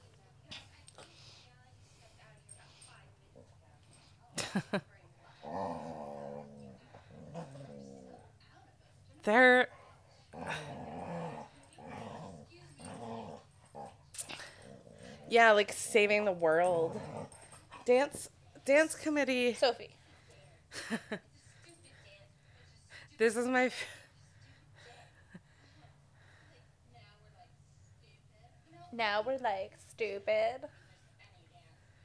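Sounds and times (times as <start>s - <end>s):
dog growling: 4.4s - 8.6s, 9.7s - 18.3s
speech: 4.6s - 4.9s, 9.2s - 9.7s, 15.3s - 17.3s, 17.9s - 20.0s, 20.8s - 21.3s, 23.2s - 24.0s, 29.0s - 30.8s.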